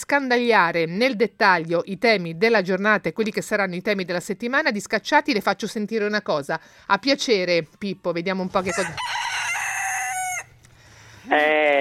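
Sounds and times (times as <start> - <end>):
speech: 0.1 - 9.3, 11.2 - 11.7
rooster crowing: 8.6 - 10.6.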